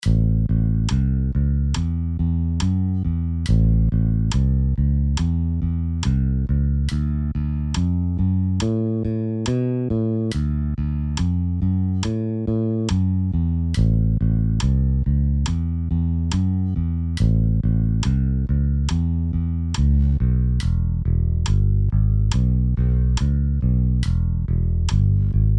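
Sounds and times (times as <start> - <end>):
bass guitar exercise: 0.0 - 25.5.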